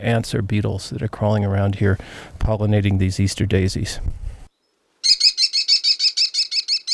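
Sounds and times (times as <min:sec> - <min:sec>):
speech: 0:00.0 - 0:04.2
American kestrel calling perched on a wire: 0:04.6 - 0:06.9.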